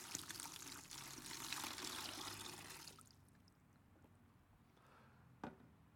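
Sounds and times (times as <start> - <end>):
water pouring into a bucket: 0.0 - 3.3.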